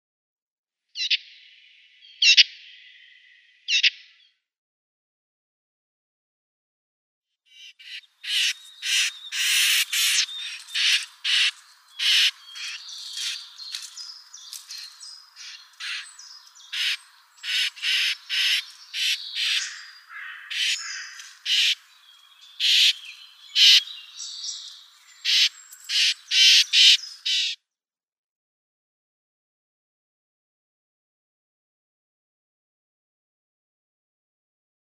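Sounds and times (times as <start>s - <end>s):
Blackcap nestlings: 7.8s - 27.5s.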